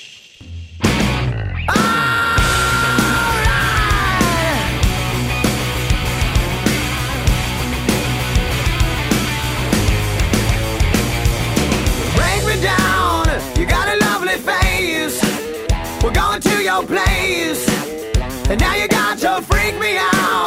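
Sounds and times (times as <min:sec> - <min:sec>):
hard rock song with distorted guitar and drums: 0:00.4 - 0:20.4.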